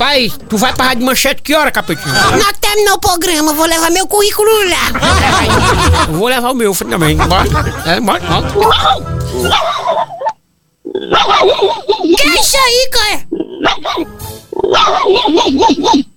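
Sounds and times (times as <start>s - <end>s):
speech: 0.2s - 10.0s, 11.0s - 16.1s
laughter: 1.8s - 2.5s, 4.8s - 10.4s
dog barking: 8.7s - 9.8s, 14.7s - 16.0s.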